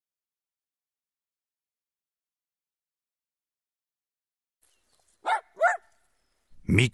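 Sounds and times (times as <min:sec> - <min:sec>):
dog barking: 0:05.2 - 0:05.9
speech: 0:06.7 - 0:06.9.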